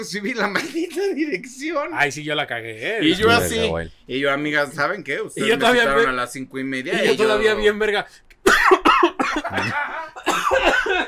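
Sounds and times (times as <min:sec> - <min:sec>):
speech: 0:00.0 - 0:08.3, 0:09.5 - 0:09.9
person coughing: 0:08.4 - 0:11.0.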